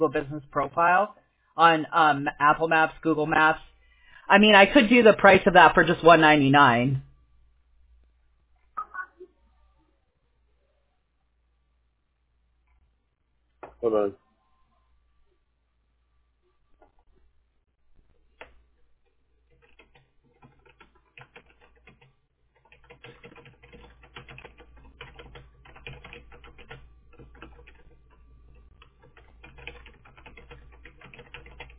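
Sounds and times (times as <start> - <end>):
speech: 0.0 - 3.7, 4.3 - 7.1, 13.8 - 14.2
rapid irregular typing on a computer keyboard: 18.4 - 18.6, 19.5 - 31.7.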